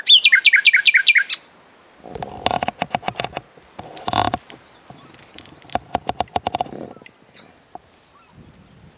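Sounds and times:
Common nightingale Luscinia megarhynchos song: 0.0 - 1.5, 4.4 - 8.8.

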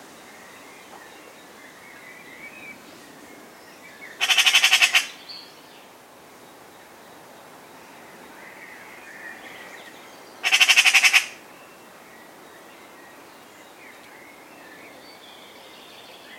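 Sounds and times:
faint background bird sounds: 0.0 - 16.3
Eurasian magpie Pica pica rasping rapid-fire chatter: 4.2 - 5.1, 10.4 - 11.4.

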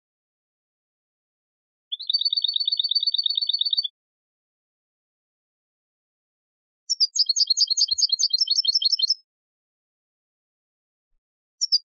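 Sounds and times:
European goldfinch Carduelis carduelis song with trill and twittering: 1.9 - 3.9, 6.9 - 9.2, 11.6 - 11.8.

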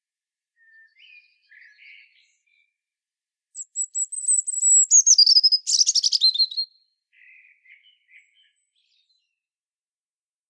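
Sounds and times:
European robin Erithacus rubecula singing: 0.6 - 2.8, 3.6 - 9.4.

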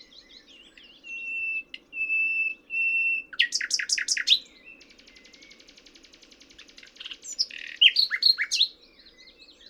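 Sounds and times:
common nightingale Luscinia megarhynchos singing: 0.0 - 9.6.

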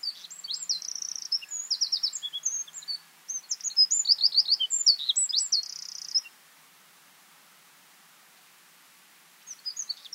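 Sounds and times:
Eurasian wren Troglodytes troglodytes twittering and trilling: 0.0 - 6.3, 9.5 - 10.1.

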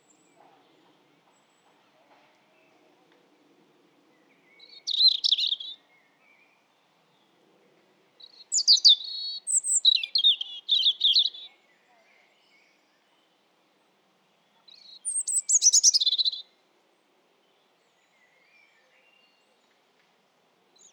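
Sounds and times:
European robin singing: 4.3 - 6.5, 8.2 - 11.8, 14.7 - 16.5.

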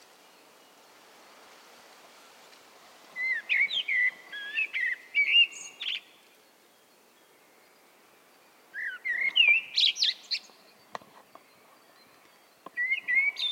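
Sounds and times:
soft background hiss: 0.0 - 13.5
common blackbird Turdus merula song: 3.1 - 13.5.

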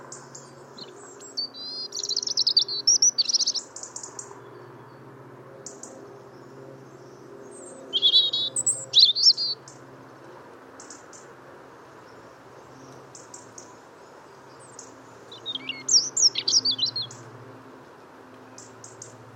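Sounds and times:
European robin Erithacus rubecula singing: 0.2 - 4.6, 7.5 - 9.8, 13.1 - 17.4.

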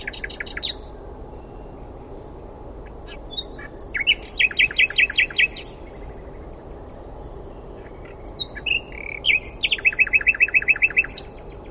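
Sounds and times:
common nightingale singing, Luscinia megarhynchos: 0.0 - 11.6.

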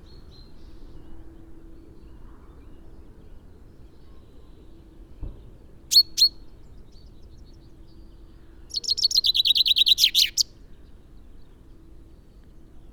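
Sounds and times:
common chaffinch Fringilla coelebs song: 5.9 - 6.5, 8.7 - 10.6.

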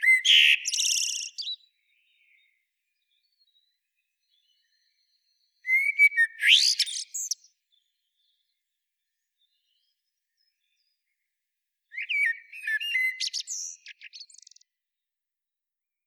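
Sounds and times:
Eurasian blackbird Turdus merula singing: 0.0 - 11.0, 11.9 - 14.7.

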